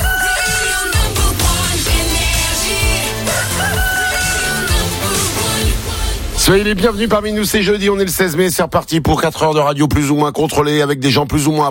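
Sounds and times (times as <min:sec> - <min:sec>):
dense driving music bed with steady bass beat: 0:00.0 - 0:07.3
rooster crowing loudly: 0:03.0 - 0:05.5
speech: 0:06.5 - 0:11.6.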